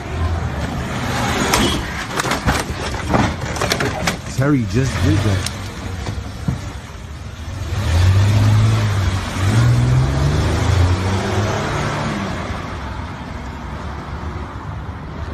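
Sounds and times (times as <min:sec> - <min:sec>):
steady outdoor road noise: 0:00.0 - 0:15.3
car engine revving and accelerating: 0:04.2 - 0:12.8
speech: 0:04.4 - 0:05.6.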